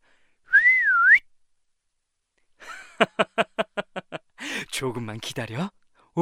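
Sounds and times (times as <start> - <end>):
person whistling: 0.5 - 1.2
speech: 3.0 - 3.4, 4.8 - 6.2.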